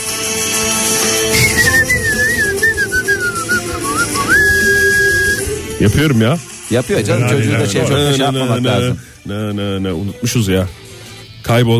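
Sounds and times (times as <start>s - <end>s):
person whistling a tune: 1.2s - 5.7s
speech: 5.8s - 10.8s, 11.5s - 11.7s.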